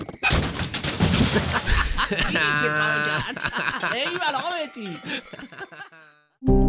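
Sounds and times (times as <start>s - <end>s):
stolen motorcycle crashing down a rocky slope into a ravine: 0.3s - 1.7s
laughter: 1.3s - 6.3s
speech: 2.5s - 6.6s.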